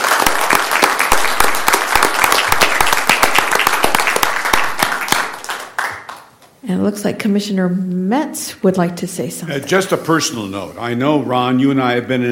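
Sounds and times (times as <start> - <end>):
audience at a commission meeting applauding: 0.0 - 6.5
speech: 6.8 - 12.2.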